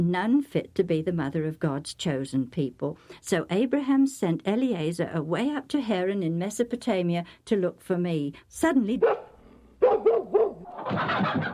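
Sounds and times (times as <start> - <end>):
speech: 0.0 - 9.3, 10.1 - 11.5
dogs barking: 9.0 - 11.5.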